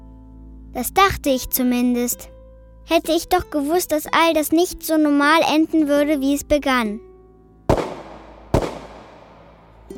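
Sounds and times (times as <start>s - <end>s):
speech: 0.7s - 2.3s, 2.9s - 7.1s
gunshots: 7.7s - 9.6s.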